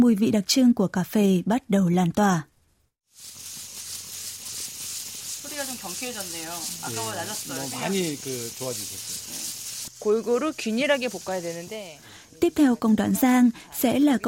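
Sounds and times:
speech: 0.0s - 2.5s, 5.8s - 14.2s
coffee beans crackling and sizzling while stirred by hand in a hot roasting pan: 3.1s - 14.2s.

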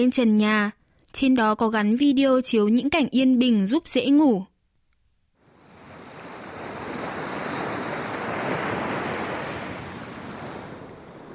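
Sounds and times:
speech: 0.0s - 4.5s
ocean waves washing onto a beach at sunset: 5.4s - 11.3s.

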